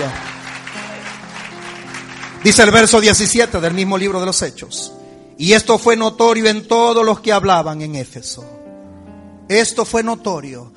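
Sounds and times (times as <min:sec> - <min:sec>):
speech: 0:00.0 - 0:00.2, 0:02.4 - 0:08.7, 0:09.5 - 0:10.7
audience applauding: 0:00.0 - 0:04.4.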